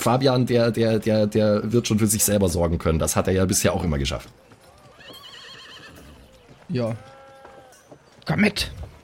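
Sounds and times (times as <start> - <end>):
speech: 0.0 - 4.5, 6.7 - 7.1, 8.3 - 8.9
horse hooves clip-clopping: 0.0 - 9.0
horse whinnying: 4.7 - 7.9.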